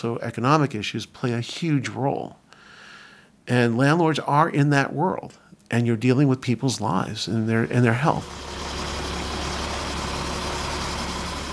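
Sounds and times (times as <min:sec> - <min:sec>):
speech: 0:00.0 - 0:02.4, 0:03.5 - 0:08.6
moving truck engine idling outside a townhouse in Rockland: 0:08.2 - 0:11.5.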